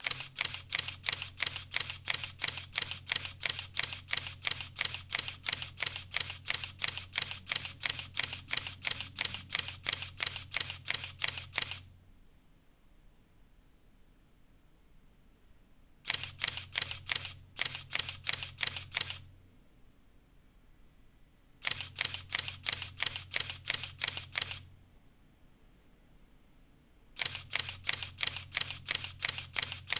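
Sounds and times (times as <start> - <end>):
Canon EOS 400D camera: 0.0 - 11.9, 16.1 - 19.3, 21.6 - 24.7, 27.2 - 29.9.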